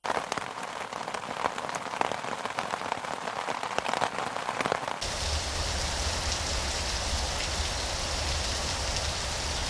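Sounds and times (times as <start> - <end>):
steady rain: 0.0 - 9.6.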